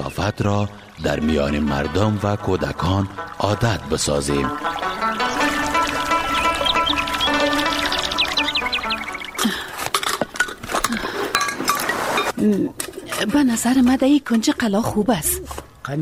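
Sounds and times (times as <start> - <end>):
speech: 0.0 - 5.2, 12.4 - 15.9
high chirping birdsong: 0.0 - 11.9
loose wooden objects and odds and ends clattering as they are shifted: 9.4 - 12.3
tinkling: 10.8 - 12.3.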